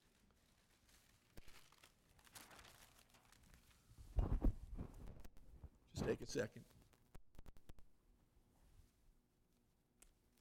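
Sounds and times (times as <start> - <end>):
blank sheet of paper crinkling and crumpling: 0.0 - 5.1
speech: 6.1 - 6.8.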